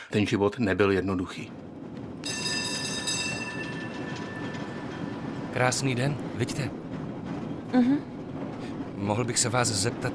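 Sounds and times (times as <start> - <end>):
tram rumbling along its rails: 0.0 - 10.1
speech: 0.1 - 1.7, 5.6 - 6.8, 7.7 - 8.1, 9.0 - 10.1.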